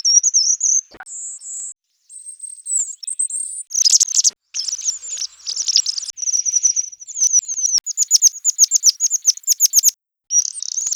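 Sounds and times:
bird chirping: 2.1s - 10.9s
bird twittering: 3.9s - 10.9s.

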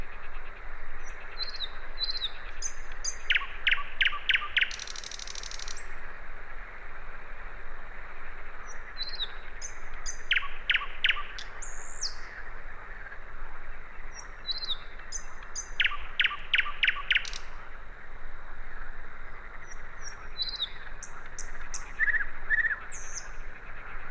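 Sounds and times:
common nightingale Luscinia megarhynchos repeating sharp notes: 1.0s - 6.0s, 8.6s - 12.5s, 14.1s - 17.6s, 19.4s - 24.0s.

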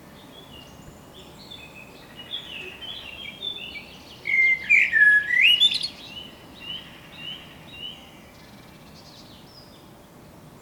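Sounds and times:
common blackbird Turdus merula singing: 0.3s - 9.8s.

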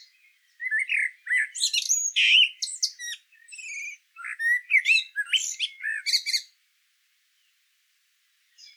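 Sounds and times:
common blackbird Turdus merula singing fluty whistles: 0.0s - 6.5s.

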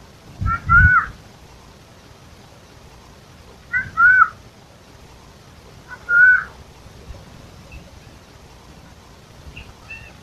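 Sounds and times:
Eurasian jay Garrulus glandarius calling: 0.4s - 1.2s, 3.7s - 4.4s, 5.8s - 6.6s, 9.5s - 10.2s.

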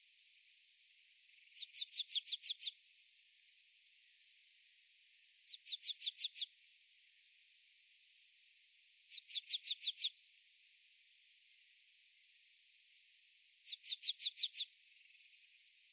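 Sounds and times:
marsh tit Poecile palustris giving high downward-sweeping notes: 1.5s - 2.7s, 5.4s - 6.5s, 9.1s - 10.1s, 13.6s - 14.7s.

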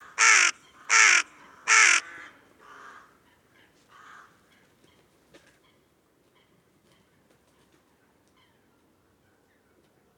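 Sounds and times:
carrion crow giving harsh rasping caws: 0.0s - 3.2s, 3.9s - 4.4s.

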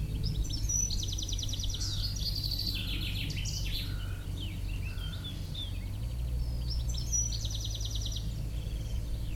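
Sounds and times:
European Goldfinch twittering calls: 0.0s - 9.3s
steady low rumble: 0.0s - 9.3s.

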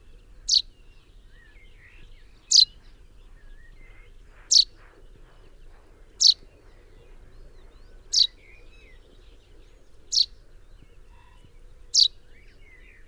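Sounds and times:
common chaffinch Fringilla coelebs calling: 0.5s - 0.7s, 4.5s - 4.7s, 6.2s - 6.4s, 8.0s - 9.0s, 10.1s - 10.4s, 11.2s - 12.2s.

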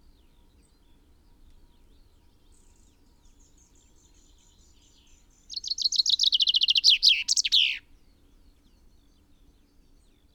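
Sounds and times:
common chaffinch Fringilla coelebs song: 2.6s - 8.0s.

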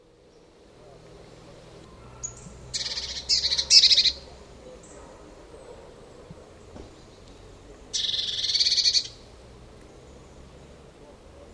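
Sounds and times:
Eurasian blue tit Cyanistes caeruleus scolding churr: 2.0s - 5.1s, 7.9s - 9.2s.

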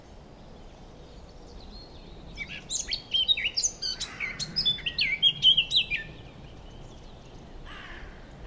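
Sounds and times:
Eurasian blackcap Sylvia atricapilla giving high varied chirps and warbled notes: 1.5s - 7.3s.

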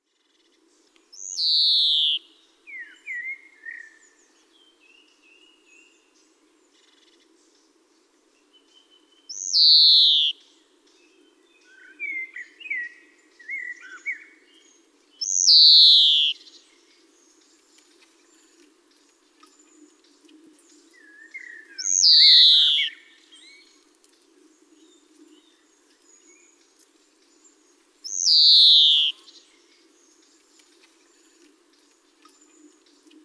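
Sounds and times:
Chloris chloris: 1.2s - 2.3s, 9.3s - 10.3s, 15.2s - 16.4s, 21.8s - 23.1s, 28.1s - 29.4s.

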